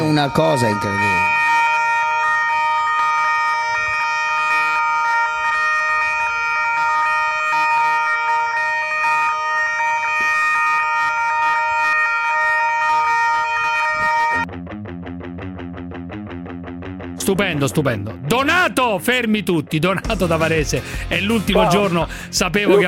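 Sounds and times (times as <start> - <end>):
emergency vehicle sirens wailing: 0.0 - 14.5, 21.5 - 22.8
speech: 0.2 - 1.1, 17.3 - 22.8
laughter: 20.8 - 22.8.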